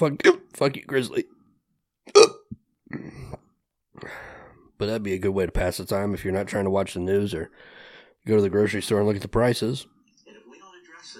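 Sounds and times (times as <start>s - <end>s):
speech: 0.0s - 1.4s, 4.0s - 10.0s
person hiccupping: 2.1s - 3.4s.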